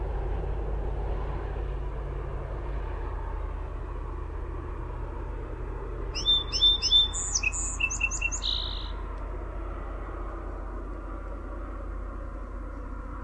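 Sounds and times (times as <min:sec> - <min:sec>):
steady low hum: 0:00.0 - 0:13.2
song sparrow song with sharp notes, quick trill and buzzy ending: 0:06.2 - 0:09.0.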